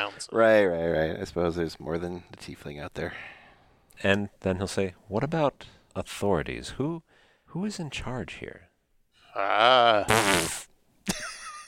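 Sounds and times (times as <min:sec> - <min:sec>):
speech: 0:00.0 - 0:03.4, 0:04.0 - 0:08.7, 0:09.3 - 0:11.3
drawn-out buzzy fart noise made with the mouth: 0:09.9 - 0:10.7.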